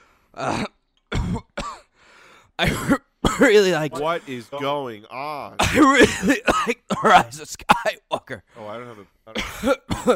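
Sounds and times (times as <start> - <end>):
speech: 0.4 - 0.7, 2.6 - 10.1
person fake coughing: 0.4 - 1.9, 2.6 - 4.2, 5.6 - 8.4, 9.3 - 10.1.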